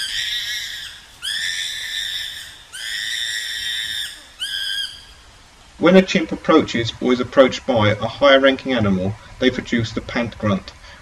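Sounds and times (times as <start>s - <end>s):
chimpanzee screaming in fear while being attacked: 0.0s - 5.4s
speech: 5.8s - 10.8s.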